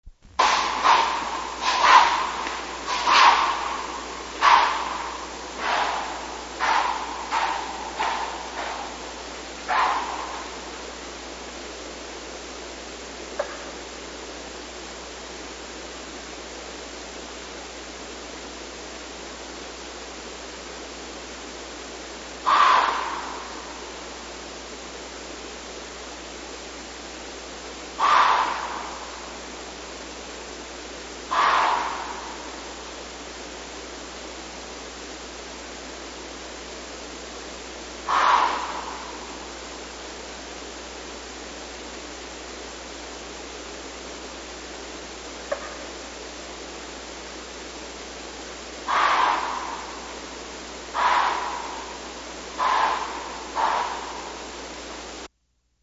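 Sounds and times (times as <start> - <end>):
deer: 0.4 - 11.2, 22.4 - 24.4, 28.0 - 29.7, 31.2 - 33.1, 38.0 - 40.1, 48.8 - 55.3.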